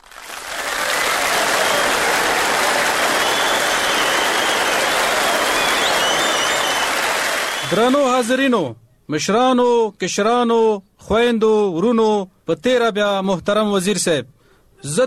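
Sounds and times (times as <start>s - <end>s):
audience applause at a certificate ceremony: 0.0s - 8.2s
speech: 7.7s - 15.0s.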